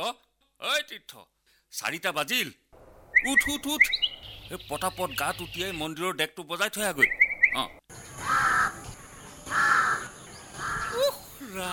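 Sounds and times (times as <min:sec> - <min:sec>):
speech: 0:00.0 - 0:08.0, 0:11.5 - 0:11.7
crow cawing in the early morning: 0:08.2 - 0:11.1.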